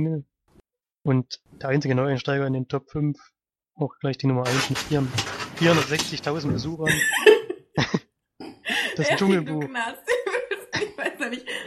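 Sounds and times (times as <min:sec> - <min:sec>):
speech: 0:00.0 - 0:00.3, 0:01.0 - 0:08.0, 0:09.0 - 0:10.2, 0:10.8 - 0:11.6
chair creaking: 0:04.5 - 0:06.8
laughter: 0:06.4 - 0:08.0, 0:08.6 - 0:11.6.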